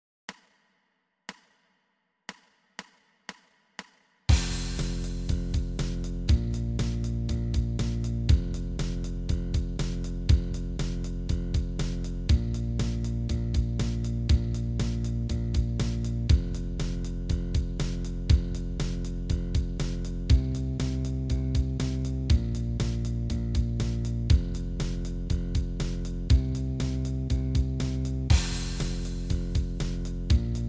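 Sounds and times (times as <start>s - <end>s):
blues bass line: 4.3s - 30.6s.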